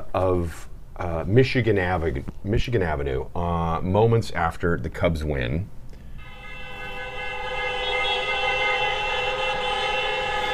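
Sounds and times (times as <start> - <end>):
speech: 0.2 - 5.8
constant roar of street noise: 6.1 - 10.5
many car horns blaring in city street celebration: 6.2 - 10.5.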